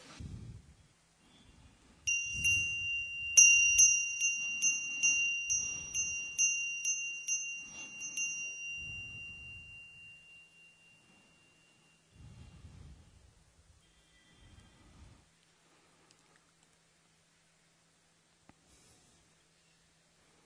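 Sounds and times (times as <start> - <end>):
bright bell rung to start a meditation session: 2.1 - 12.1.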